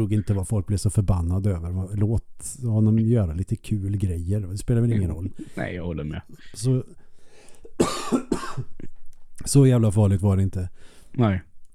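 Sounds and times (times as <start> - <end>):
speech: 0.0 - 7.0, 7.7 - 8.8, 9.4 - 11.5
harsh raspy coughing fit: 5.0 - 9.0.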